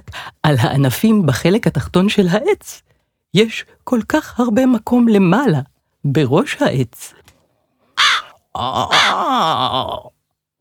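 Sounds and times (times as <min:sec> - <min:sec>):
speech: 0:00.5 - 0:07.3, 0:08.6 - 0:10.2
crow cawing harshly: 0:08.0 - 0:10.0.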